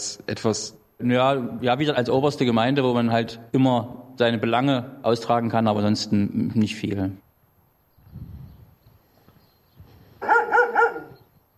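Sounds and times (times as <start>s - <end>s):
speech: 0.0s - 7.2s
dogs barking: 10.2s - 11.3s.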